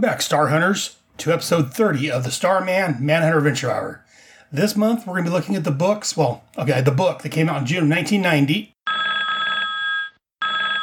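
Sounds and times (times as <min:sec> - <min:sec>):
speech: 0:00.0 - 0:08.7
mobile phone ringing: 0:08.9 - 0:10.8.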